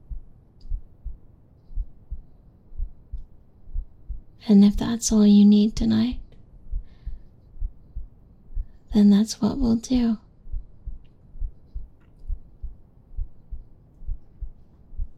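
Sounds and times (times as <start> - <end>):
human heartbeat: 0.0 - 4.3, 6.7 - 8.8, 10.4 - 15.1
speech: 4.4 - 6.2, 9.0 - 10.2.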